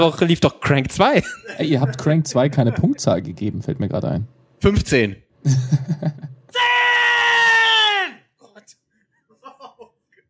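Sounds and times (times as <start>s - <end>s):
speech: 0.0s - 6.7s
laughter: 1.2s - 3.2s, 5.5s - 6.5s, 9.3s - 10.1s
loud piercing scream: 6.5s - 8.2s.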